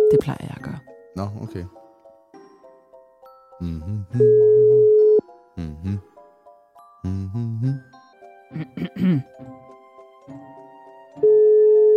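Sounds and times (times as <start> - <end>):
speech: 0.1 - 1.8, 3.6 - 5.0, 5.6 - 6.1, 7.0 - 9.6, 10.3 - 10.6, 11.2 - 11.4
phone ringback tones on an unanswered phone line: 4.2 - 5.2, 11.2 - 11.9.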